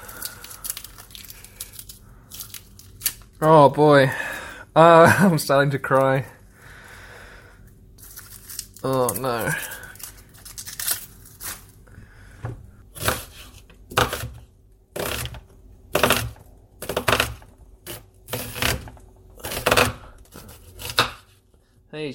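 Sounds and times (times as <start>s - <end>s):
speech: 3.4s - 6.4s, 8.8s - 9.7s
knife chopping brown onions on a board: 13.0s - 14.4s, 15.0s - 18.8s, 19.4s - 21.3s.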